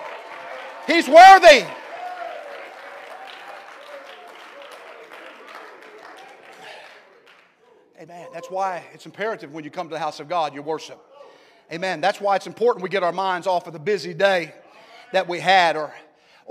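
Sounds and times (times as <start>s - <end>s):
church audience clapping in praise during a morning worship service: 0.0s - 7.6s
person shouting: 0.9s - 1.7s
speech: 0.9s - 1.8s, 8.0s - 11.1s, 11.7s - 16.4s.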